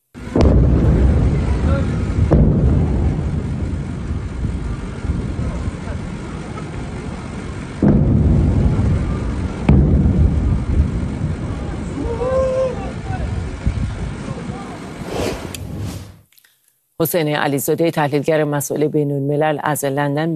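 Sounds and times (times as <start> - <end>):
booming explosion blasts: 0.2 - 6.4, 7.7 - 11.8, 14.9 - 16.2
continuous loud roaring rumble: 0.2 - 16.2
speech: 17.0 - 20.3.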